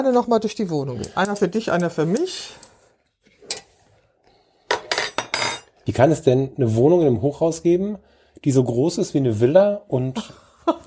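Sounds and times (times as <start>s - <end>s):
speech: 0.0s - 2.7s, 5.9s - 10.8s
cups and glassware clinking while making tea: 4.7s - 5.8s
laughter: 10.2s - 10.8s.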